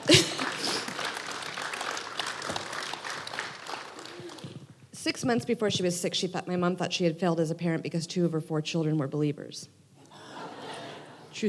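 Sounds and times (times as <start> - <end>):
laughter: 0.0 - 1.2, 10.1 - 11.4
audience applause: 0.0 - 4.6
speech: 5.1 - 9.8.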